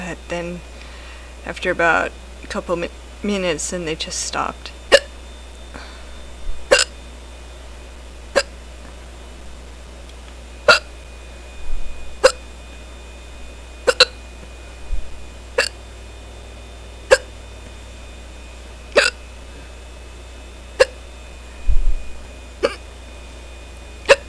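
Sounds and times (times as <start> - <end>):
speech: 0.1 - 0.8, 1.4 - 4.8
faint breathy sounds: 0.7 - 1.4, 5.7 - 6.3
sharp hiccups: 4.9 - 5.1, 6.7 - 7.0, 10.7 - 10.9, 12.2 - 12.4, 13.8 - 14.2, 15.6 - 15.8, 17.1 - 17.3, 19.0 - 19.2, 20.8 - 21.0, 22.6 - 22.8, 24.0 - 24.2.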